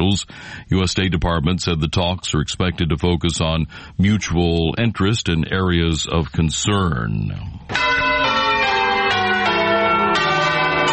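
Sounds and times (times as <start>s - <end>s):
speech: 0.1s - 8.0s
church bells tolling: 7.7s - 10.9s.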